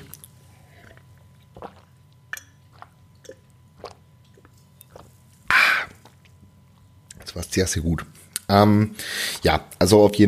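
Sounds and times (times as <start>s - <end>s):
person gulping water: 0.8s - 6.4s
speech: 7.4s - 10.2s.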